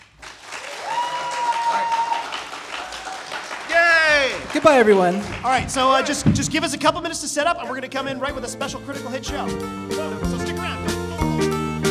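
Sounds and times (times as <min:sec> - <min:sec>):
live audience applause at the end of a show: 0:00.0 - 0:06.3
speech: 0:04.5 - 0:10.7.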